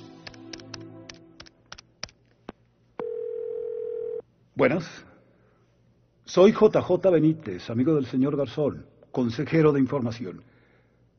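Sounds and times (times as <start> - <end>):
telephone dial tone: 3.0 - 4.2
speech: 4.6 - 5.1, 6.3 - 10.5.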